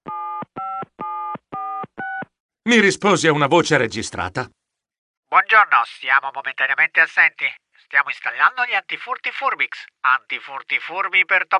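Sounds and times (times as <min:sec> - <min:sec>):
telephone number being dialed on keypad: 0:00.1 - 0:02.3
speech: 0:02.6 - 0:04.6, 0:05.4 - 0:11.5.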